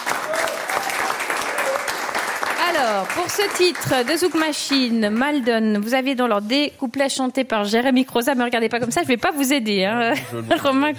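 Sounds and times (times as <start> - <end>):
audience applauding a performer at a live show in Fribourg: 0.0 - 5.4
speech: 2.8 - 10.9.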